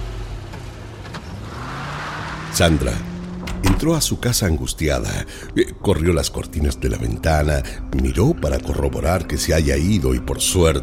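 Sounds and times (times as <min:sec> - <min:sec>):
car engine humming and revving as car drives away: 0:00.0 - 0:04.0
speech: 0:02.6 - 0:03.1, 0:03.7 - 0:10.8.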